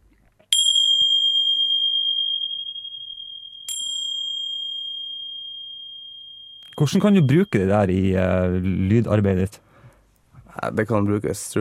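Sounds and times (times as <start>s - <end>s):
small hand bells or cymbals being struck: 0.5s - 9.0s
speech: 6.8s - 9.7s, 10.6s - 11.5s.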